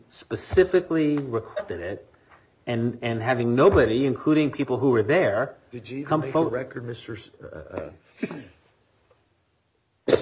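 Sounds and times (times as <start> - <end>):
speech: 0.1 - 2.1, 2.7 - 8.5
person coughing: 1.5 - 1.8, 7.7 - 8.6.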